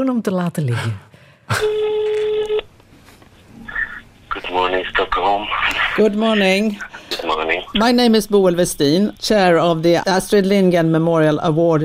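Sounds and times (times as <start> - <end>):
speech: 0.0 - 2.0, 4.5 - 11.8
loud steady electronic telephone dialing tone: 1.6 - 2.7.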